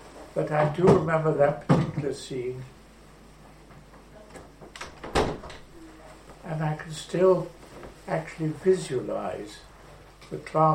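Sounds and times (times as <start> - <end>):
speech: 0.4 - 2.8, 6.5 - 9.7, 10.3 - 10.7
door being pushed shut with scrapes, creaks and a thud: 4.8 - 5.7.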